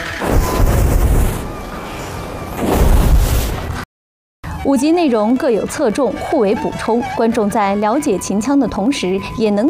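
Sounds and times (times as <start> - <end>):
whooshing flame bursts from a fire-spitting stunt in Qinqiang opera: 0.2 - 3.7
speech: 4.7 - 9.6.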